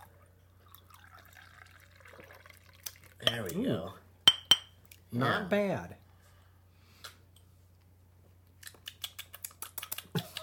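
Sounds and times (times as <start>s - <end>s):
wine pouring into a glass: 0.0s - 3.3s
low hum: 0.0s - 10.4s
speech: 3.2s - 4.0s, 5.1s - 6.0s.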